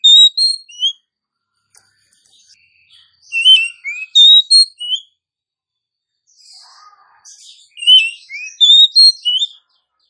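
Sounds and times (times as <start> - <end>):
female oriental magpie-robin calling: 0.0 - 1.0, 3.2 - 5.1, 7.6 - 9.6.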